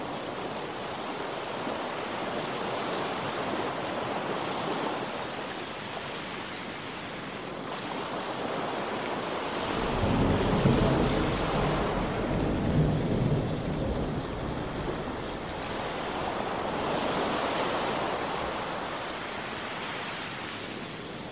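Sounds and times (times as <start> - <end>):
steady rain: 0.0 - 21.3
ocean wave surges: 1.6 - 21.0
low thunder rumble: 9.7 - 18.0.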